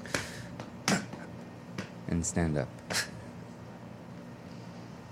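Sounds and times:
person's hand slapping their own belly: 0.1s - 2.0s
speech: 2.1s - 3.1s.

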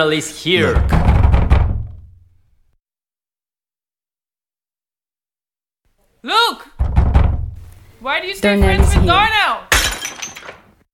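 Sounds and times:
speech: 0.0s - 1.2s, 8.0s - 9.7s
knocking on a door: 0.7s - 2.3s, 6.8s - 7.7s, 8.6s - 9.4s.

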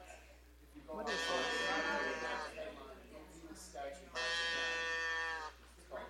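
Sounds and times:
short bleating vocal sounds: 1.0s - 2.6s, 4.1s - 5.6s
cow mooing: 1.1s - 2.5s, 4.2s - 5.6s.

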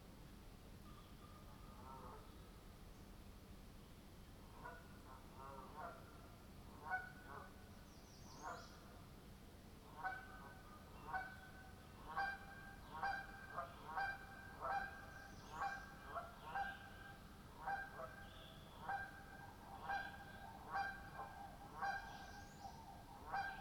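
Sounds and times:
low background noise: 0.0s - 23.5s
Canada goose honking at Deer Lake in Ontario: 12.1s - 15.0s, 15.6s - 22.2s, 23.2s - 23.5s.

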